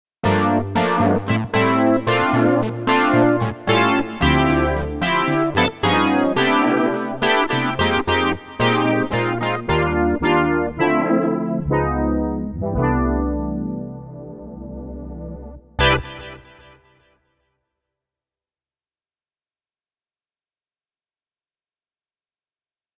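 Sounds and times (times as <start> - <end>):
Dx brass synth: 0.2 - 17.1.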